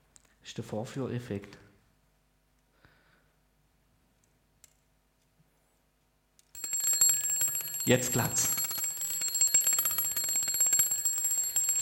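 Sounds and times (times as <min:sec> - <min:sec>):
speech: 0:00.5 - 0:01.7, 0:07.9 - 0:08.6
alarm clock with no snooze function ringing with a metallic rattle: 0:06.6 - 0:11.8.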